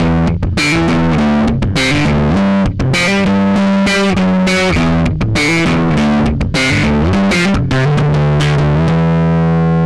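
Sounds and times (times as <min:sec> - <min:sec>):
slap bass: 0:00.0 - 0:09.8.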